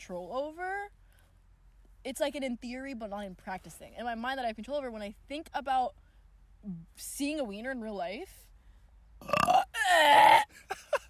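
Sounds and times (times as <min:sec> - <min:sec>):
speech: 0:00.0 - 0:01.0, 0:02.0 - 0:06.0, 0:06.6 - 0:08.4, 0:09.2 - 0:10.7
loud drawn-out burp: 0:09.2 - 0:10.5.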